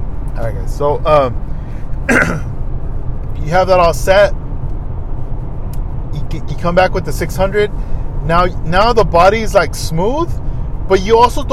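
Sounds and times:
speech: 0:00.5 - 0:02.5, 0:03.4 - 0:04.4, 0:06.3 - 0:11.5
short gruff throat clearing: 0:02.1 - 0:02.5.

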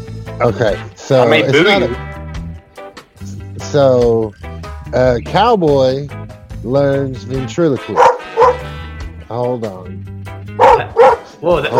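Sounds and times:
speech: 0:00.4 - 0:02.2, 0:03.7 - 0:08.6, 0:09.3 - 0:10.1, 0:11.4 - 0:11.7
person imitating dog barking: 0:10.6 - 0:11.7.

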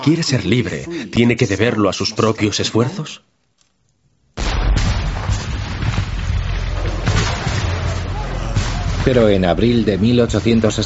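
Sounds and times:
speech: 0:00.0 - 0:03.3, 0:09.0 - 0:10.8
cannon fire from a heavy bombardment: 0:04.4 - 0:10.8.

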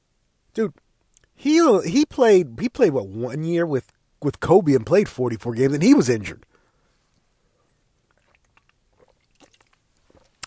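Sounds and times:
speech: 0:00.6 - 0:00.8, 0:01.4 - 0:06.5
person sipping an energy drink: 0:08.0 - 0:10.4.

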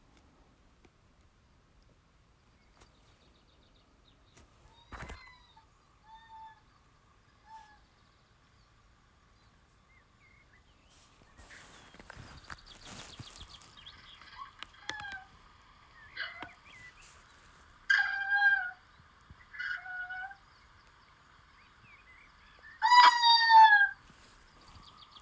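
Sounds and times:
faint hiss: 0:00.0 - 0:23.0, 0:23.7 - 0:25.2
eastern screech owl trilling whinny calls: 0:04.6 - 0:06.8, 0:07.4 - 0:07.9, 0:14.2 - 0:15.4, 0:16.0 - 0:17.2, 0:17.9 - 0:20.5, 0:22.2 - 0:25.2.

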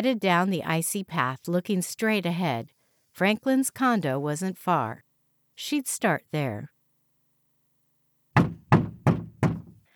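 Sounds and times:
speech: 0:00.0 - 0:05.0, 0:05.6 - 0:06.7
heavy knocks pounding on a door: 0:08.4 - 0:09.9.

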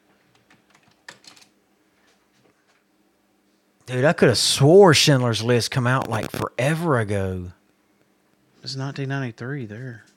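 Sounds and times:
typing on a computer keyboard: 0:00.3 - 0:01.6
speech: 0:03.9 - 0:07.6, 0:08.7 - 0:10.1.

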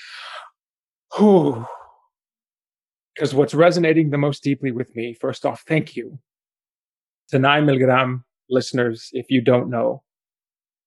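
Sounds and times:
deep breath with voiced sigh: 0:00.0 - 0:02.0
speech: 0:00.2 - 0:01.8, 0:03.2 - 0:06.3, 0:07.3 - 0:10.0.

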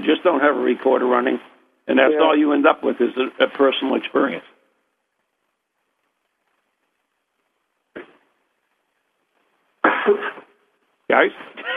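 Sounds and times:
speech: 0:00.0 - 0:04.5, 0:10.1 - 0:10.3, 0:11.1 - 0:11.7
person clearing throat: 0:09.8 - 0:10.5.

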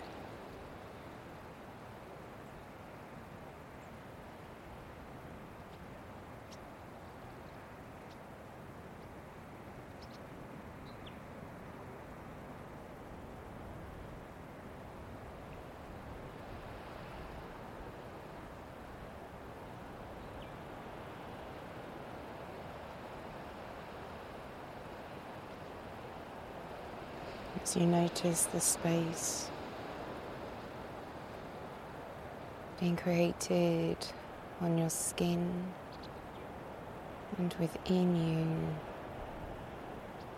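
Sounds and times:
ocean waves: 0:00.0 - 0:40.3
wind blowing: 0:00.0 - 0:40.3
speech: 0:27.7 - 0:29.4, 0:32.8 - 0:35.8, 0:37.4 - 0:38.9.

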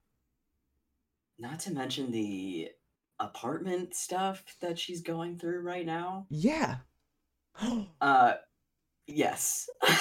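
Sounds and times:
speech: 0:01.4 - 0:06.9, 0:07.6 - 0:08.5, 0:09.1 - 0:09.9
person gasping: 0:07.6 - 0:08.0.

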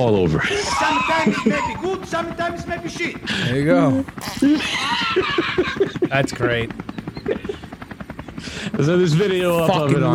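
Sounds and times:
speech: 0:00.0 - 0:07.6, 0:08.7 - 0:10.1
helicopter rotor chopping: 0:00.0 - 0:10.1
laughter: 0:00.2 - 0:02.5, 0:04.2 - 0:08.8.

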